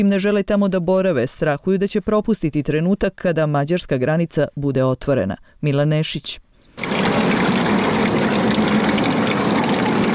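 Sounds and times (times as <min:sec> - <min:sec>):
speech: 0:00.0 - 0:06.4
water running from an outdoor public tap in a park: 0:06.8 - 0:10.1.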